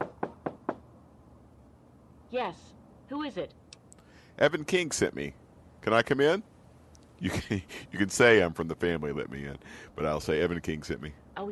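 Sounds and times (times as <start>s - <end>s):
knocking on a door: 0.0s - 0.9s
speech: 2.3s - 3.6s, 4.4s - 6.5s, 7.2s - 11.5s
laughter: 7.2s - 8.4s.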